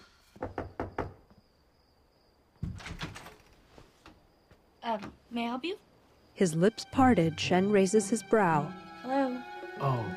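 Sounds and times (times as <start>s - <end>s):
quick knocks on a door: 0.4s - 1.4s, 2.6s - 3.2s
speech: 4.8s - 9.2s.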